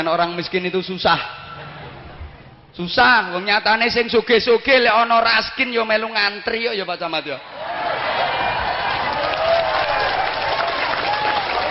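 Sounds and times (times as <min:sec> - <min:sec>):
speech: 0:00.0 - 0:01.4, 0:02.8 - 0:07.6
crowd applauding at a public talk: 0:07.6 - 0:11.6.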